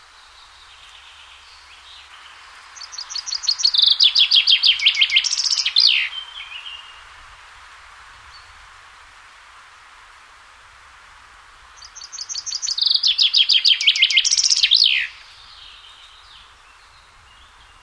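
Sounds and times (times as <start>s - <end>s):
common chaffinch Fringilla coelebs singing: 0.0s - 7.0s, 11.8s - 17.8s.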